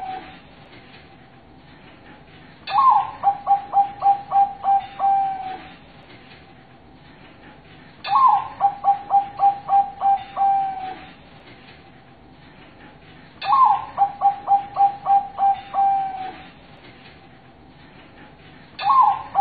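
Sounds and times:
zebra dove repeating its song: 0:00.0 - 0:00.3, 0:02.7 - 0:05.8, 0:08.0 - 0:11.1, 0:13.4 - 0:16.5, 0:18.8 - 0:19.3.

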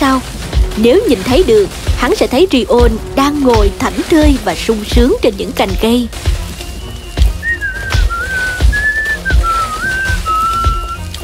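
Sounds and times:
speech: 0:00.2 - 0:06.4
man whistling a simple wavering tune: 0:06.4 - 0:11.2.

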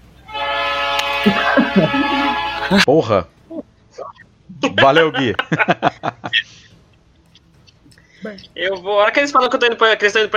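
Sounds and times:
loud train horn blast of stacked harmonic tones: 0:00.2 - 0:02.9
laughter: 0:01.2 - 0:02.9, 0:04.6 - 0:07.4
speech: 0:01.2 - 0:03.4, 0:04.0 - 0:06.8, 0:08.2 - 0:10.3.

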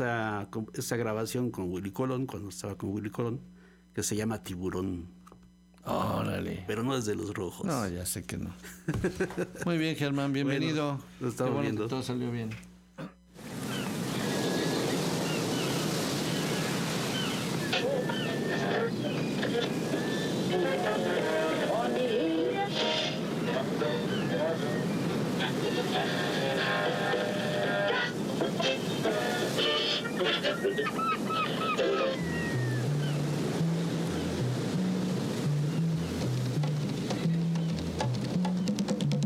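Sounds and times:
speech: 0:00.0 - 0:13.2
laughter: 0:08.6 - 0:09.7
rough stormy sea waves roaring: 0:13.4 - 0:39.1.

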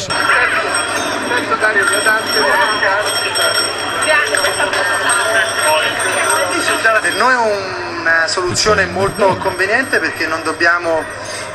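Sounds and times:
bicycle bell ringing on a bike with puncture-proof tyres: 0:00.2 - 0:08.1
speech: 0:01.5 - 0:04.9, 0:07.0 - 0:11.5
laughter: 0:08.4 - 0:09.9.

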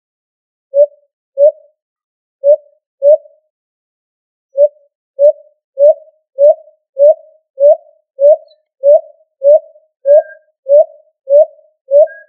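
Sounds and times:
pigeon or dove uttering soft tonal hoots: 0:00.8 - 0:01.8, 0:02.4 - 0:03.4, 0:04.6 - 0:12.2.

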